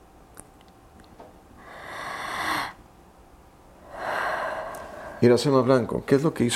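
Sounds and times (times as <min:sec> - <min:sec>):
deep forceful breathing through the mouth: 0:01.6 - 0:02.8, 0:03.8 - 0:05.2
speech: 0:05.2 - 0:06.5.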